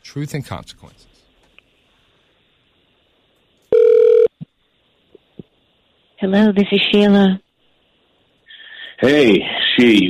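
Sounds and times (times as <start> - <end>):
speech: 0.1 - 1.1, 6.2 - 7.4, 9.0 - 10.0
electronic phone tone of an outgoing call: 3.7 - 4.3.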